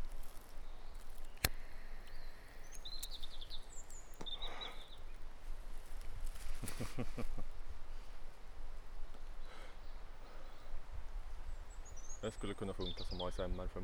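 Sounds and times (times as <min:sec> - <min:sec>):
faint bird chirps: 0:00.0 - 0:05.5, 0:09.2 - 0:13.8
cigarette crackling while burning as someone draws on it: 0:00.0 - 0:08.2
hiss of noise: 0:00.0 - 0:13.8
person laughing briefly: 0:06.6 - 0:07.5
speech: 0:06.7 - 0:07.6, 0:12.2 - 0:13.8.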